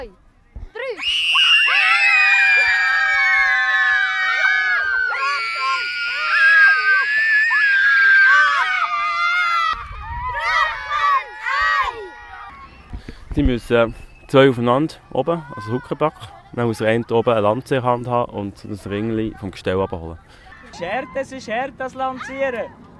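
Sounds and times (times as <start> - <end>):
speech: 0.0 - 0.2, 0.9 - 1.3, 13.4 - 22.9
children shrieking and screaming during a shouting game: 1.0 - 13.0, 15.0 - 16.3, 20.5 - 22.9.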